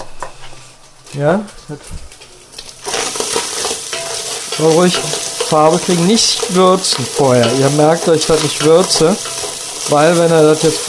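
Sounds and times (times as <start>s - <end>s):
speech: 1.1s - 2.1s, 4.6s - 10.8s
scraping and stirring in a frying pan: 2.2s - 10.8s
thin strips of unseasoned food crackling and sizzling in a frying pan: 2.4s - 10.8s.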